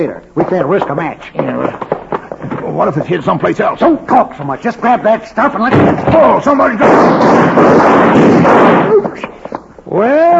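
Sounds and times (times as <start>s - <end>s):
speech: 0.0s - 1.9s, 2.6s - 10.3s
gunshot: 5.7s - 9.3s.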